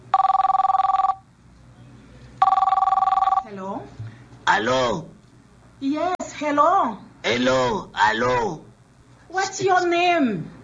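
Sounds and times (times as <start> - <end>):
faint noise: 0.0 - 10.6
telephone bell ringing in trilling bursts: 0.1 - 1.2, 2.4 - 3.5
speech: 5.9 - 8.6, 9.6 - 10.5.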